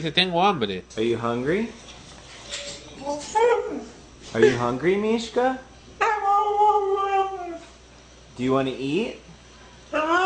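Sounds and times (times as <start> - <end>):
speech: 0.0 - 5.7, 8.4 - 9.2
dog howling: 6.0 - 7.7, 9.9 - 10.2.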